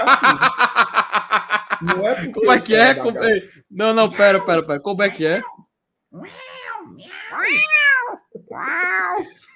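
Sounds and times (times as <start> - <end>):
speech: 0.0 - 0.5, 1.8 - 5.5, 6.1 - 7.9
laughter: 0.0 - 3.1
cat meowing: 4.3 - 9.4.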